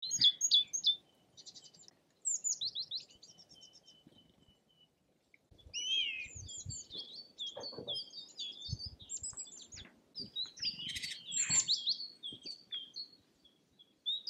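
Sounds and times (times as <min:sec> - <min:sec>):
bird song of many short high chirps and whistled notes: 0:05.7 - 0:09.6, 0:10.6 - 0:13.0.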